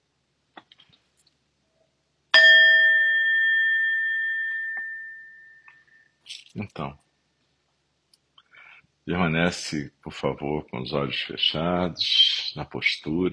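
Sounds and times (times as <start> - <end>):
meditation bell ringing: 2.3 - 6.2
speech: 6.3 - 7.0, 9.1 - 13.3.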